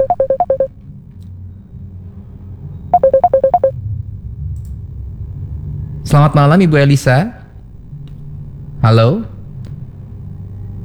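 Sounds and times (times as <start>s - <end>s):
WhatsApp incoming call ringtone pips: 0.0s - 0.7s, 3.0s - 3.7s
low steady hum: 0.0s - 10.8s
speech: 6.1s - 7.4s, 8.8s - 9.3s.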